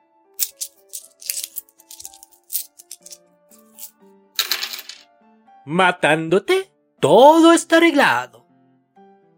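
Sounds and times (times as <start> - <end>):
coins jingling in a pocket: 0.4 - 5.0
speech: 5.6 - 8.4.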